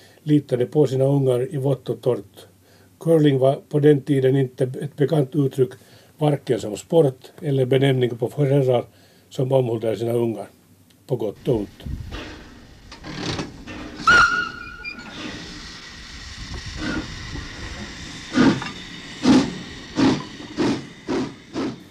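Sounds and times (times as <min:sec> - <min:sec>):
speech: 0:00.2 - 0:12.3
small coal-fired steam shunting locomotive hissing: 0:11.4 - 0:21.8.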